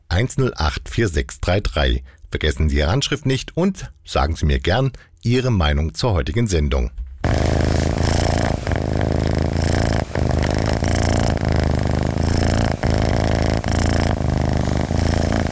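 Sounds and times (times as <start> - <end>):
speech: 0.2 - 7.6
cat purring contentedly: 7.2 - 15.4.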